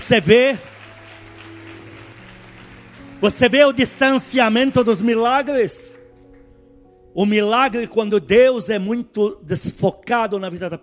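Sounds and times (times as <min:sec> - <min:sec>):
audience applauding: 0:00.0 - 0:06.6
speech: 0:00.1 - 0:00.7, 0:03.2 - 0:06.0, 0:07.2 - 0:10.8.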